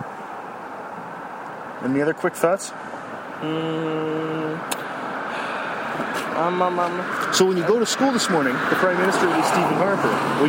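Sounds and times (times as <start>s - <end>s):
school bus engine drone approaching along the road: 0.0s - 1.9s, 2.8s - 10.4s
speech: 1.8s - 4.8s, 6.0s - 10.4s
sharp click: 4.7s - 4.9s.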